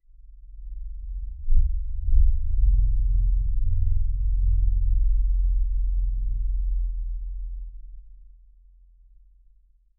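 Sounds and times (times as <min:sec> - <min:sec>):
low subterranean drone: 0:00.0 - 0:08.3.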